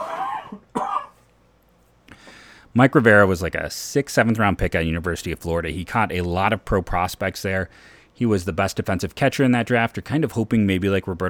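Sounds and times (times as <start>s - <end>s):
coughs: 0.0s - 1.3s
speech: 2.8s - 11.2s.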